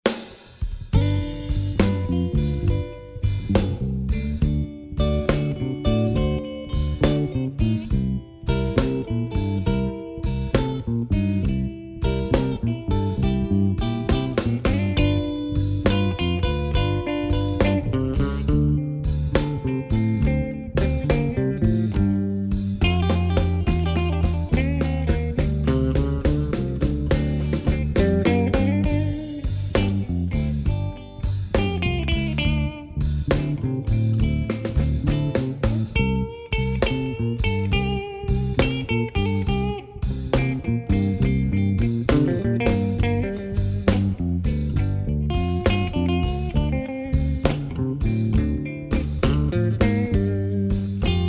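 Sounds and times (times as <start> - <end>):
eight bar blues drumming: 0.0 - 51.2.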